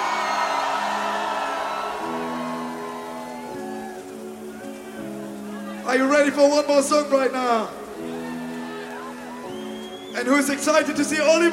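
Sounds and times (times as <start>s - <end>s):
huge festival crowd screaming and roaring: 0.0s - 5.9s, 7.8s - 10.2s
speech: 5.9s - 7.8s, 10.2s - 11.5s.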